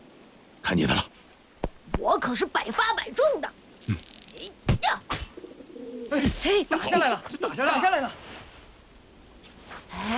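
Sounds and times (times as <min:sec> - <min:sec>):
speech: 0:00.7 - 0:01.2, 0:02.0 - 0:05.2, 0:05.9 - 0:08.2
pigeon cooing: 0:05.3 - 0:06.2.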